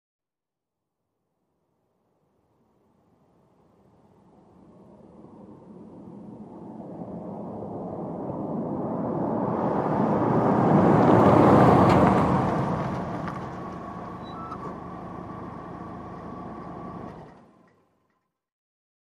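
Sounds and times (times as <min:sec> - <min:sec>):
small compact car engine in medium off: 0:09.5 - 0:18.4.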